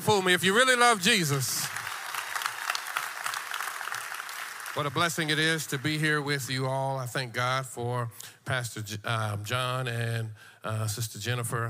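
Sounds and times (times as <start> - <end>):
speech: 0.1 - 1.6, 4.8 - 11.6
church congregation clapping in praise during a worship service: 0.8 - 6.8.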